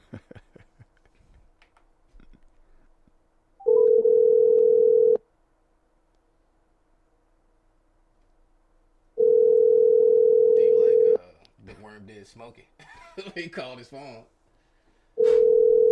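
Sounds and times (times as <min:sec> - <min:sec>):
laughter: 0:00.0 - 0:01.4
electronic ringback tone of an outgoing phone call: 0:03.6 - 0:05.2, 0:09.2 - 0:11.2, 0:15.2 - 0:15.9
speech: 0:12.3 - 0:14.4.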